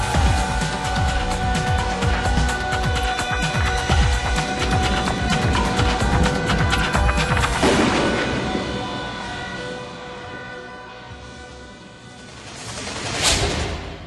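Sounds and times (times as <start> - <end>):
crackling fireworks bursts: 0.0 - 14.0
fireworks exploding: 4.6 - 10.5.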